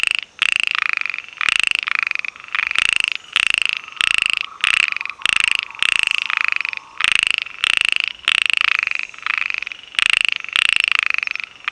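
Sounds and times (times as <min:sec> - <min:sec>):
Microhyla heymonsi frogs in a dense chorus: 0:00.0 - 0:11.6.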